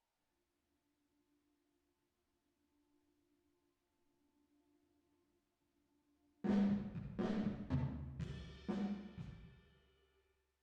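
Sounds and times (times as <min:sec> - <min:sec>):
drum with reverb: 0:06.5 - 0:09.7.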